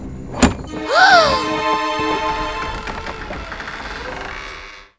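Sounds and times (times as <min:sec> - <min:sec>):
door swinging shut by itself: 0:00.2 - 0:04.9
short wavering tone: 0:00.4 - 0:03.6.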